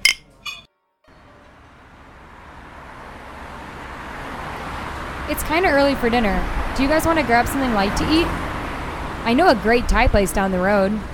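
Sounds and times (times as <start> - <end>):
cocktail glasses clinking in a toast: 0.0 - 0.7
speech: 5.3 - 8.4, 9.2 - 11.1.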